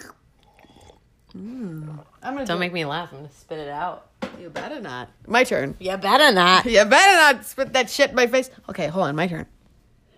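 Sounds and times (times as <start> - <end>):
sipping water from a glass: 0.0 - 2.2
wet mouth and swallowing noises: 0.0 - 2.2
speech: 1.4 - 9.6.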